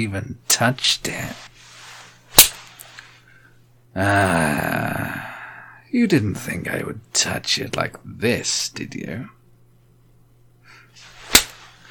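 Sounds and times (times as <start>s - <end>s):
speech: 0.0s - 1.5s, 3.9s - 5.0s, 5.9s - 9.4s
hand slapping on skin: 11.2s - 11.7s.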